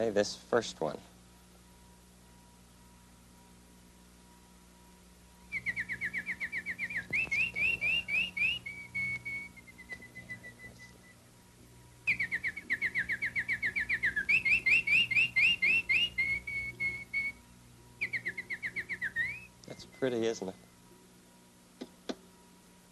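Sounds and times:
speech: 0:00.0 - 0:01.1, 0:20.1 - 0:20.6
canary singing in whistling trills: 0:05.5 - 0:20.2.

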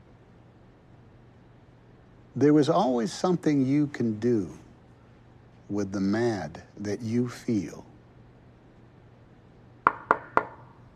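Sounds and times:
speech: 0:02.4 - 0:04.6, 0:05.7 - 0:07.9
firm knocks on a wooden door: 0:09.8 - 0:10.6.

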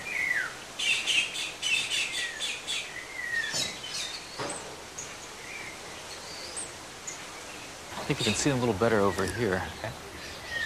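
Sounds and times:
several birds chirping and twittering while feeding: 0:00.0 - 0:10.6
speech: 0:08.1 - 0:10.1.

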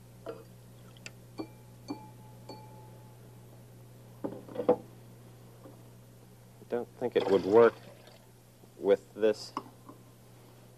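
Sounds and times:
drinking glass with water tapped: 0:01.4 - 0:02.9
speech: 0:06.8 - 0:07.8, 0:08.8 - 0:09.6.

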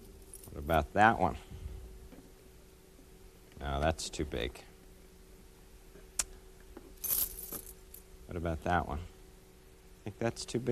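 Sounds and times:
speech: 0:00.7 - 0:01.4, 0:03.7 - 0:04.7, 0:08.3 - 0:09.1, 0:10.0 - 0:10.6
set of keys jangling as handled: 0:07.0 - 0:07.8.

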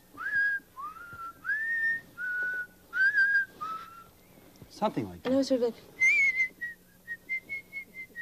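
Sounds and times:
person whistling a tune: 0:00.2 - 0:04.1, 0:06.0 - 0:08.1
speech: 0:04.8 - 0:06.0.

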